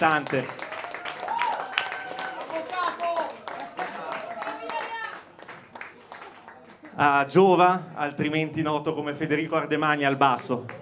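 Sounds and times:
speech: 0:00.0 - 0:00.6, 0:07.0 - 0:10.8
audience applause at a live band concert: 0:00.0 - 0:07.1, 0:10.1 - 0:10.8.

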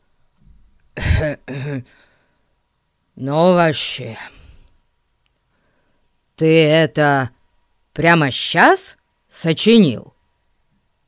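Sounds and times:
person clearing throat: 0:01.0 - 0:01.9
speech: 0:01.2 - 0:02.1, 0:03.2 - 0:04.4, 0:06.4 - 0:07.4, 0:08.0 - 0:10.2
faint breath: 0:01.8 - 0:02.6, 0:04.3 - 0:04.8, 0:05.5 - 0:06.2.

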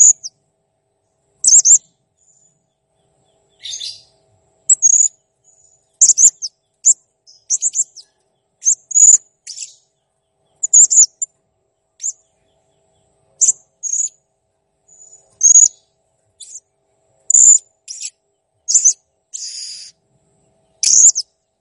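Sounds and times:
blue-crowned hanging parrot singing high squeaky chirps: 0:00.0 - 0:00.3, 0:01.4 - 0:01.8, 0:03.5 - 0:04.1, 0:04.7 - 0:05.1, 0:06.0 - 0:09.9, 0:10.6 - 0:11.3, 0:12.0 - 0:12.2, 0:13.4 - 0:14.2, 0:14.9 - 0:15.8, 0:16.4 - 0:16.6, 0:17.3 - 0:20.0, 0:20.8 - 0:21.3.

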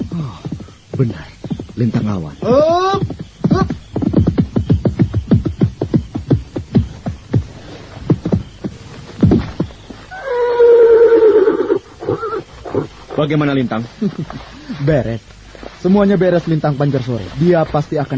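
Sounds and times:
hoofbeats of a horse approaching: 0:00.0 - 0:14.5
speech: 0:00.2 - 0:03.7, 0:13.2 - 0:18.1
loud ringing horse whinny: 0:10.1 - 0:12.9.

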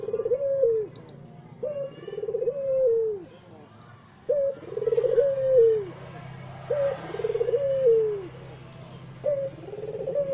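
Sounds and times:
white Barbary dove cooing: 0:00.0 - 0:03.3, 0:04.2 - 0:06.0, 0:06.6 - 0:08.4, 0:09.1 - 0:10.3.

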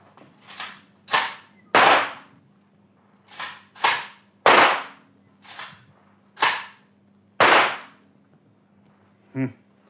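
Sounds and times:
gunshots fired at a target during a marksmanship contest: 0:00.5 - 0:02.3, 0:03.3 - 0:05.7, 0:07.4 - 0:08.0.

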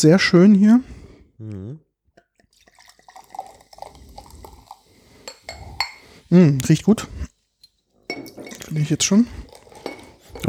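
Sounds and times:
speech: 0:00.0 - 0:01.8, 0:06.3 - 0:07.3, 0:08.7 - 0:09.4
grape lemonade being poured into a glass: 0:02.2 - 0:06.9, 0:07.7 - 0:10.4.

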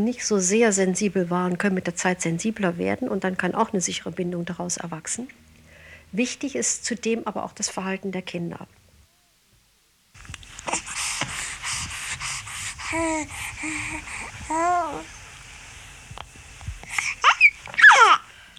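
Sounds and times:
speech: 0:00.0 - 0:05.5, 0:06.1 - 0:08.8, 0:12.9 - 0:15.2
baby cooing and babbling: 0:12.8 - 0:15.2, 0:17.0 - 0:18.3.

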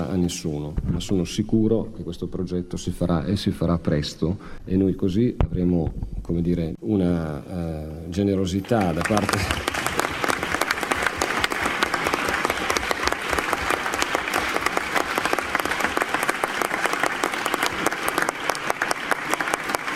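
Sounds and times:
speech: 0:00.1 - 0:09.7
large audience applauding at a public talk: 0:08.6 - 0:19.9.

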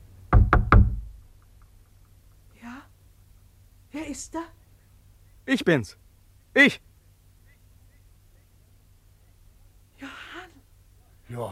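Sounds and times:
hand knocking on wooden window shutters at night: 0:00.3 - 0:01.2
speech: 0:04.0 - 0:04.6, 0:05.5 - 0:06.0, 0:06.6 - 0:06.9.

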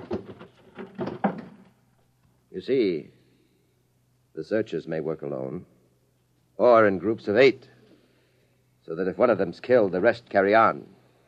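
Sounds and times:
dull knocks and thumps of a chair against a door: 0:00.0 - 0:01.8
wooden chair dragged and shoved against a door: 0:00.0 - 0:01.8
speech: 0:02.6 - 0:03.2, 0:04.4 - 0:05.7, 0:06.6 - 0:07.7, 0:08.9 - 0:11.0.

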